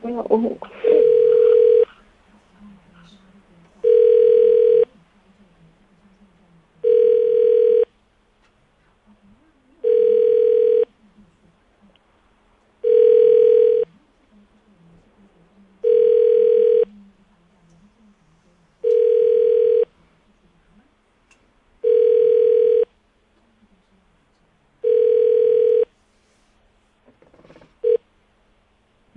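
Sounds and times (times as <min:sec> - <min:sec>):
faint murmur: 0:00.0 - 0:29.1
speech: 0:00.2 - 0:00.8
telephone ringback tone of unanswered call: 0:00.8 - 0:01.8, 0:03.8 - 0:04.9, 0:06.8 - 0:07.9, 0:09.8 - 0:10.9, 0:12.8 - 0:13.9, 0:15.8 - 0:16.9, 0:18.9 - 0:19.9, 0:21.8 - 0:22.9, 0:24.8 - 0:25.9.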